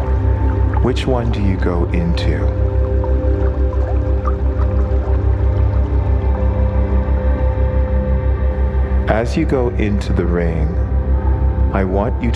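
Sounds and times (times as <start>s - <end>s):
water dripping and plinking: 0.0s - 7.7s
dense steady low rumble with rhythmic pulsing throb: 0.0s - 12.3s
speech: 0.8s - 2.6s, 9.1s - 10.9s, 11.7s - 12.3s.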